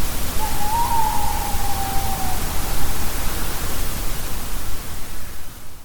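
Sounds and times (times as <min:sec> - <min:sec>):
heavy background noise: 0:00.2 - 0:05.8
tawny owl hoot: 0:00.3 - 0:04.5.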